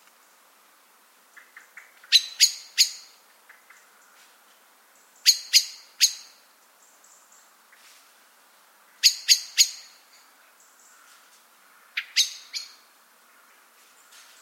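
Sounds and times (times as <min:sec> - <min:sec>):
Eurasian blackbird Turdus merula chink calls: 0:01.4 - 0:04.2, 0:05.0 - 0:07.8, 0:09.0 - 0:14.4.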